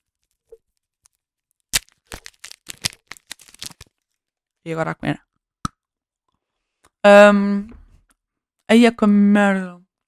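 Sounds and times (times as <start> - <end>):
chocolate wrapper tearing: 0.0 - 4.2
speech: 4.6 - 5.3, 7.0 - 7.7, 8.7 - 9.8.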